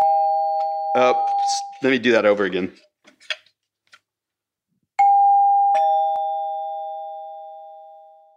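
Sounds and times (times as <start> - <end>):
electric two-tone doorbell chime: 0.0 - 1.7, 5.0 - 8.3
speech: 1.0 - 2.9.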